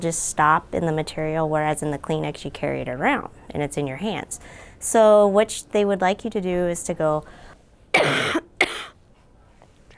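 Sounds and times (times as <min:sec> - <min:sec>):
speech: 0:00.0 - 0:08.4
coughing into a sleeve: 0:07.9 - 0:09.0.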